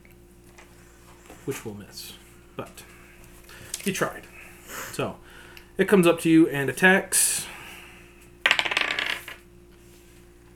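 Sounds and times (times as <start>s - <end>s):
speech: 1.5s - 4.4s, 5.0s - 7.5s
dice rolling across a hard tabletop in a role-playing game: 8.4s - 9.4s.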